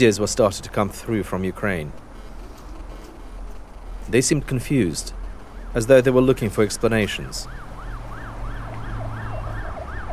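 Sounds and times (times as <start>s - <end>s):
speech: 0.0s - 2.0s, 4.1s - 7.6s
deep rumble of engine and traffic noise: 0.0s - 10.1s
sirens of black official cars wailing: 5.0s - 10.1s.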